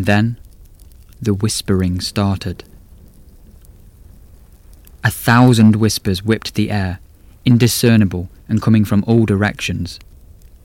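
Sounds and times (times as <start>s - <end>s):
speech: 0.0s - 0.4s, 1.2s - 2.7s, 5.0s - 10.1s
deep low rumble of thunder: 0.0s - 10.6s
steady dense rain hissing: 0.0s - 10.6s.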